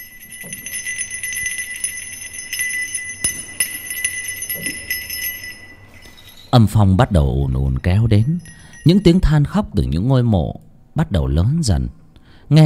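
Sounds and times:
bell ringing out over a graveyard: 0.0 - 9.7
speech: 6.5 - 12.6.

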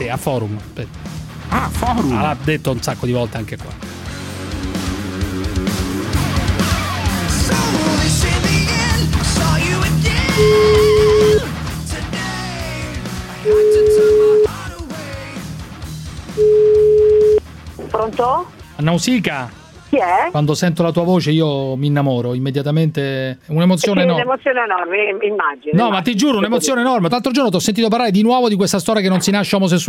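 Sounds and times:
speech: 0.0 - 4.0, 17.9 - 29.8
loud dense mixed sound: 1.1 - 14.5
telephone call tone beeps while placing a call: 10.3 - 11.4, 13.5 - 14.5, 16.4 - 17.4.

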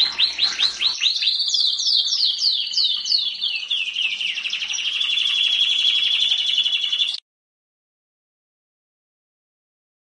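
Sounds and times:
canary singing: 0.0 - 7.2.

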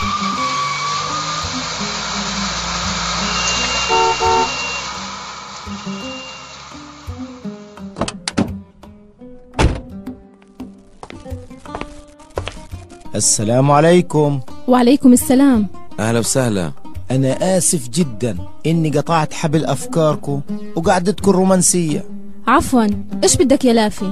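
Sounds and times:
car engine rumble: 0.0 - 10.1
car horn toot: 3.2 - 5.0, 5.7 - 6.6
car door thunks and clicks: 7.8 - 8.6, 9.4 - 10.2
speech: 13.2 - 24.0.

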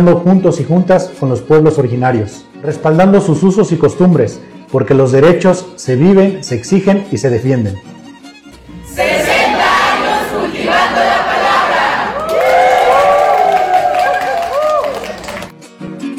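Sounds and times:
speech: 0.0 - 8.0
crowd cheering and applauding at a community radio station anniversary celebration: 8.9 - 15.6.

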